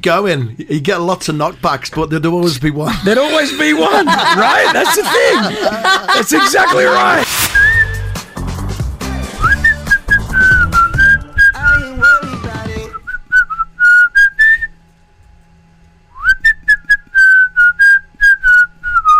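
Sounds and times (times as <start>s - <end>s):
speech: 0.0s - 7.5s
laughter: 2.8s - 7.3s
pop band backing with drums: 7.2s - 11.0s
whistled pop melody: 7.4s - 14.8s, 16.2s - 19.1s.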